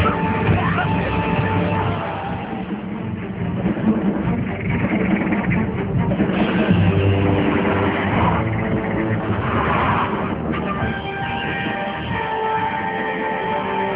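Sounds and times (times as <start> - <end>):
road rumble of a car speeding along an open road: 0.0 - 13.8
car speeding along an open road: 4.6 - 10.8.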